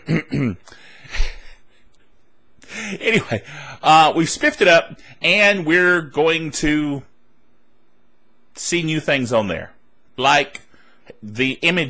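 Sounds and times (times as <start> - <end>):
person clearing throat: 0.0 - 1.6
speech: 0.1 - 0.8, 3.0 - 7.1, 8.6 - 10.6, 11.2 - 11.8.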